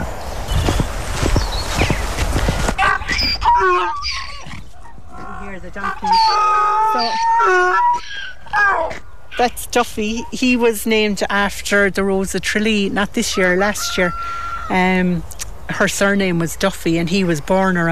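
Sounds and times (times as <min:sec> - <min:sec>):
miniature pigs rustling and trampling outdoors: 0:00.0 - 0:06.7
miniature pigs squealing outdoors: 0:02.8 - 0:09.0
speech: 0:09.7 - 0:17.9.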